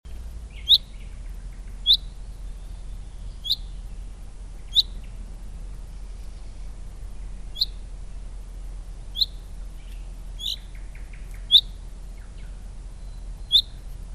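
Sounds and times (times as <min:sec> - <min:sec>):
steady low rumble: 0:00.1 - 0:14.1
common chaffinch Fringilla coelebs calls: 0:00.5 - 0:08.2, 0:09.0 - 0:14.0.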